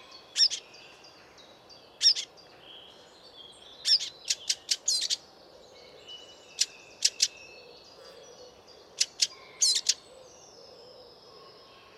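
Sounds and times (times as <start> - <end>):
Eurasian blackcap giving clicking tac calls: 0.4 - 0.6, 3.9 - 5.2, 6.6 - 7.3, 9.0 - 10.0.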